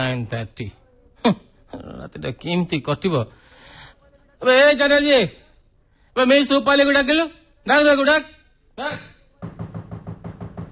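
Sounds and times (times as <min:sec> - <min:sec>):
speech: 0:00.0 - 0:03.4, 0:04.4 - 0:05.4, 0:06.2 - 0:09.1
knocking on a wooden door: 0:09.4 - 0:10.7.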